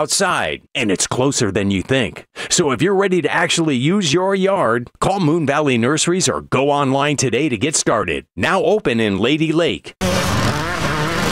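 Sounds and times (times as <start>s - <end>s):
speech: 0.0s - 10.1s
speedway motorcycles racing at a Friday night summer event: 10.0s - 11.3s.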